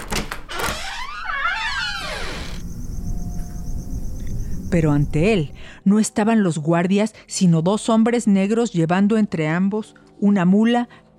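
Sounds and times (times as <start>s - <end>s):
wooden door creaking slowly open: 0.0s - 2.7s
faint high steady chirping: 1.6s - 5.6s
speech: 4.7s - 11.1s.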